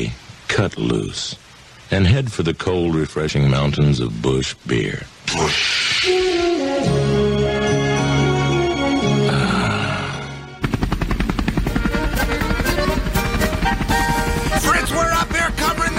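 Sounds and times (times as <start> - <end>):
speech: 0.0 - 6.6
music: 6.0 - 15.9
hovering helicopter rotor thudding: 10.6 - 15.9.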